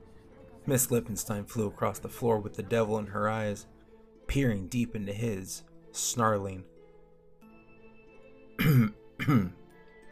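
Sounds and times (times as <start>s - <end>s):
speech: 0.7s - 3.7s, 4.3s - 6.7s, 9.3s - 9.6s
man clearing his throat: 8.6s - 9.6s.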